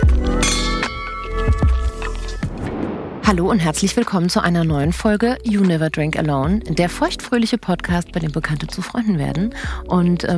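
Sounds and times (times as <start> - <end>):
glasses clinking in a toast: 0.3 - 2.4
speech: 3.3 - 10.3.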